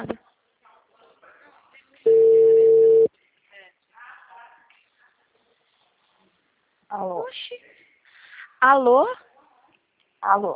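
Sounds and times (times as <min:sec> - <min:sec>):
faint noise: 0:00.0 - 0:10.5
telephone ringback tone while placing a call: 0:02.1 - 0:03.1
speech: 0:08.6 - 0:09.2, 0:10.2 - 0:10.5.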